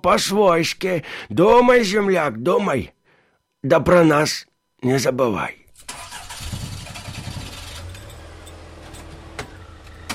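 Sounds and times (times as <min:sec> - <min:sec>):
speech: 0:00.0 - 0:03.0, 0:03.6 - 0:05.6
Zhiguli car engine cranking and idling: 0:05.7 - 0:10.1.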